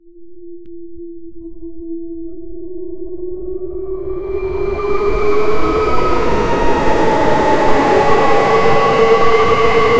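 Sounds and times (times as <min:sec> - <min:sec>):
horror film style music: 0:00.4 - 0:09.9.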